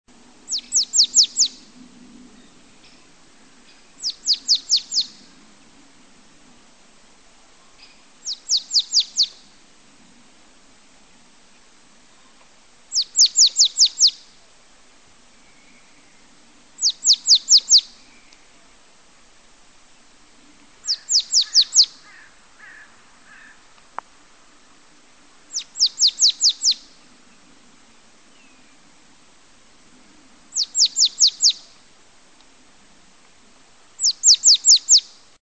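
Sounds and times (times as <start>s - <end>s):
marsh tit singing: 0.5s - 1.7s, 2.5s - 5.3s, 7.8s - 9.5s, 12.9s - 14.3s, 15.5s - 18.5s, 20.8s - 22.3s, 25.5s - 27.0s, 30.5s - 31.8s, 34.0s - 35.1s.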